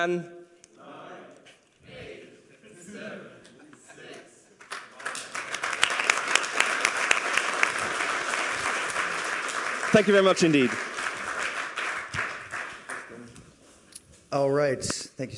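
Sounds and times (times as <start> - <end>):
speech: 0.0 - 0.4, 9.9 - 10.9, 14.3 - 15.3
audience applause: 4.6 - 13.3.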